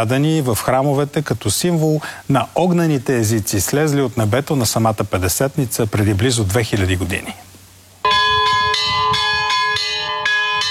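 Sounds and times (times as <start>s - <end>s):
speech: 0.0s - 7.5s
church bells ringing: 8.0s - 10.7s.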